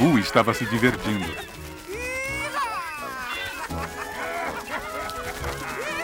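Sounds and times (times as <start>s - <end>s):
birds squawking and clucking while being chased: 0.0s - 6.0s
laughter: 0.0s - 6.0s
shrill rising bird cries: 0.0s - 6.0s
speech: 0.2s - 1.7s.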